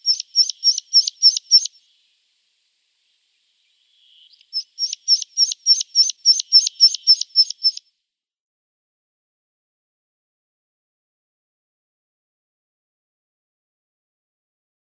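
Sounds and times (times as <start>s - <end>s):
meadow pipit song: 0.0s - 1.8s, 4.4s - 7.8s.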